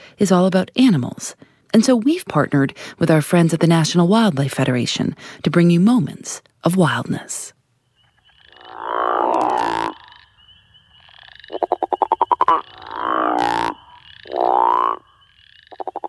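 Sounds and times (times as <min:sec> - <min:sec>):
speech: 0:00.2 - 0:07.6
male crawfish frog giving deep snoring breeding call: 0:08.5 - 0:10.3, 0:11.0 - 0:16.0.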